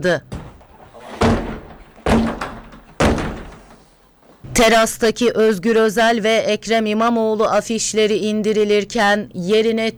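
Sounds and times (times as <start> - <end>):
speech: 0.0 - 0.3, 4.6 - 9.9
heavy thuds of a locked terrace door forced with shoulder barges and kicks: 0.2 - 4.6.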